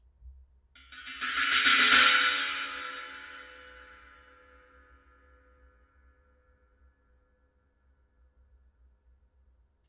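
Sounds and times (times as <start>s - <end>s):
Zildjian cymbal: 0.8s - 7.0s.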